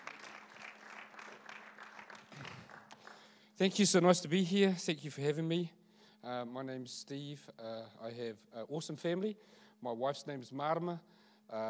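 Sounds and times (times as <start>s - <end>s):
audience applause: 0.0s - 3.4s
speech: 3.6s - 11.6s.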